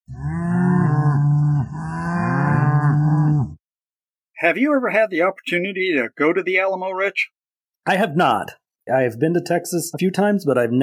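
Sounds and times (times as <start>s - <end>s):
cattle mooing: 0.1s - 3.6s
speech: 4.4s - 10.8s.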